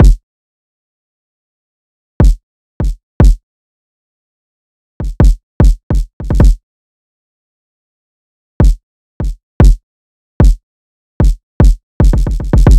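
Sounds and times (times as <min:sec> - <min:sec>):
drill music kick drum: 0:00.0 - 0:00.2, 0:02.2 - 0:03.4, 0:05.0 - 0:06.6, 0:08.6 - 0:09.8, 0:11.2 - 0:12.7.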